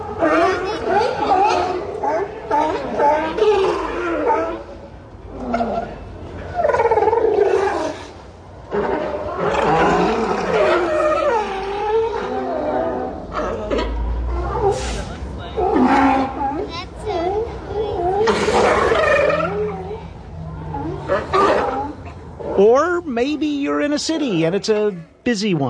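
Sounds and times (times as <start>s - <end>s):
crowd of sea lions barking and roaring on the coast: 0.0s - 22.8s
speech: 24.0s - 25.6s.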